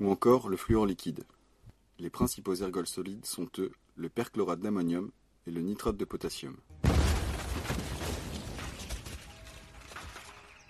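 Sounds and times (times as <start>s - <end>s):
speech: 0.0s - 1.4s, 2.0s - 6.9s, 7.6s - 8.0s
explosion: 6.8s - 9.9s
rattling debris: 6.8s - 10.6s.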